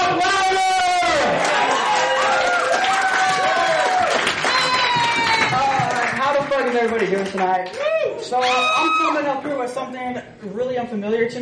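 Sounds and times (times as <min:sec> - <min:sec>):
large crowd cheering and shouting with whoops and yells: 0:00.0 - 0:05.9, 0:07.8 - 0:09.2
speech: 0:06.8 - 0:11.3.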